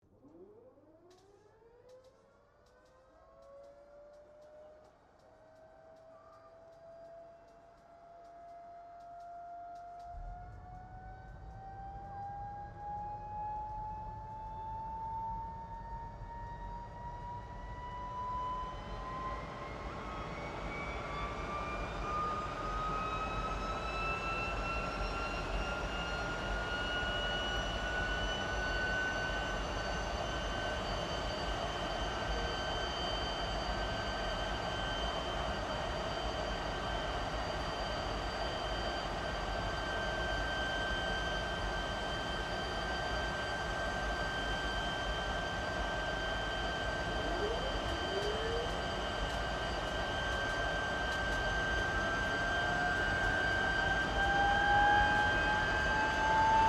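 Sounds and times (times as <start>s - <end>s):
Gloster Meteor F Mk8 fighter jet starting up: 12.4s - 56.6s.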